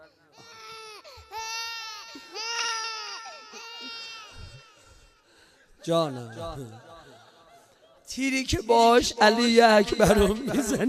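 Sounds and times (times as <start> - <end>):
baby crying: 0.4 - 5.2
speech: 5.8 - 6.9, 8.2 - 10.8
laughter: 5.9 - 8.0, 10.0 - 10.8.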